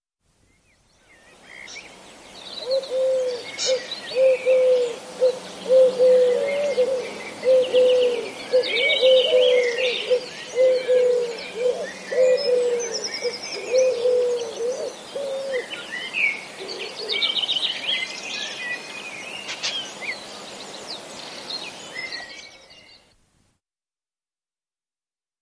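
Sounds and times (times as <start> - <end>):
songbirds chirping and trilling: 0.4 - 23.2
Eurasian collared dove cooing: 2.6 - 15.8, 16.6 - 17.4.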